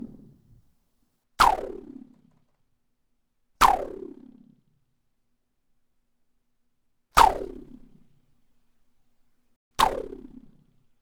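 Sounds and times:
bungee exercise rope whoosh: 1.4 - 1.8, 9.8 - 10.4.

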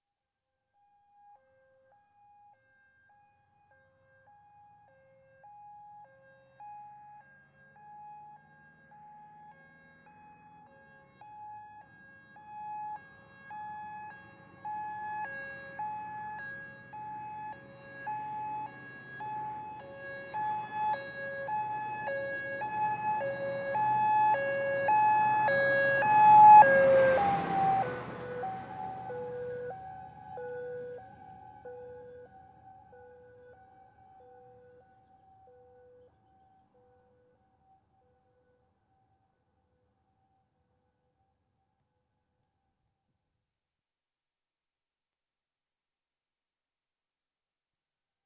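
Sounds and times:
fire engine passing left to right: 7.7 - 34.8.

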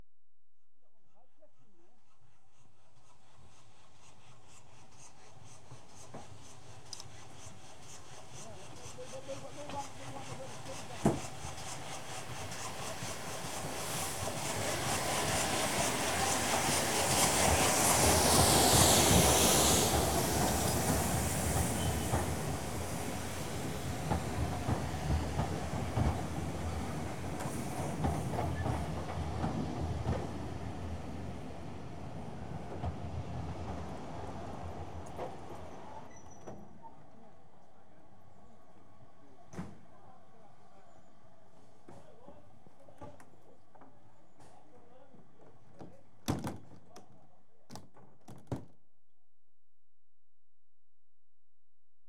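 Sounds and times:
train arriving: 6.3 - 42.1
left train doors opening: 14.1 - 31.7, 32.6 - 37.0.

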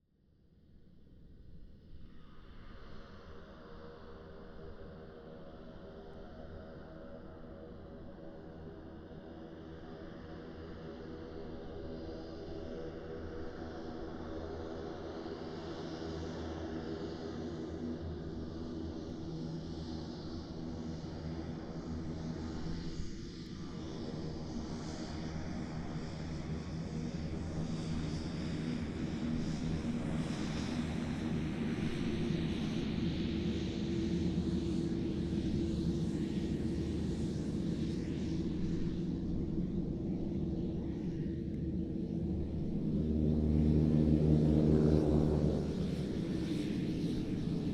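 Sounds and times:
Beechcraft King Air 350i 2010 turboprop plane taking off: 11.9 - 47.7.

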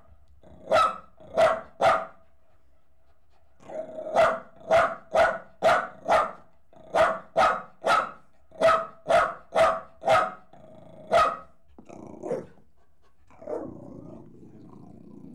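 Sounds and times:
Jack Russell Terrier crossed with Corgi barking: 0.7 - 2.2, 4.1 - 10.5, 11.1 - 11.5, 12.3 - 12.6.

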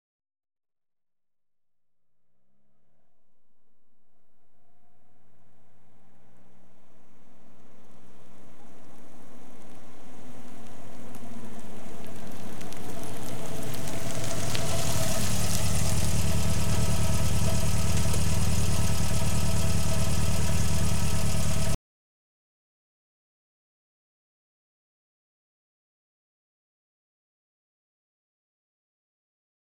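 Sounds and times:
Ford Fiesta 1.1 L hatchback with automatic transmission: 2.8 - 21.8.

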